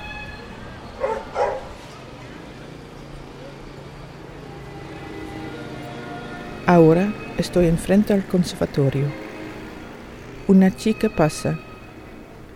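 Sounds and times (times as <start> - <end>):
steady low street rumble of traffic: 0.0 - 12.5
dog barking in a street by a café terrace: 1.0 - 1.8
speech: 6.7 - 9.2, 10.5 - 11.7.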